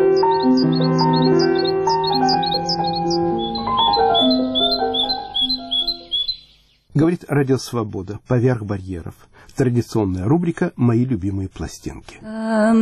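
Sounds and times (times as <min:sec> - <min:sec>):
sustained melodic instrumental music: 0:00.0 - 0:06.7
short bright winter bird chirps: 0:00.0 - 0:07.0
speech: 0:07.2 - 0:12.8.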